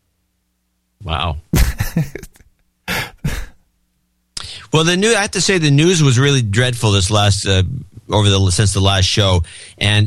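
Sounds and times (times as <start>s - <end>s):
person clearing throat to hold back an allergic cough: 2.9s - 3.6s
speech: 4.7s - 10.0s.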